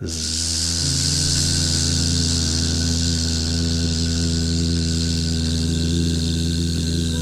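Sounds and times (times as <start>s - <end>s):
faint airy hiss: 0.0s - 7.2s
voice humming a buzzing tone during a bee-breathing exercise: 0.0s - 7.2s.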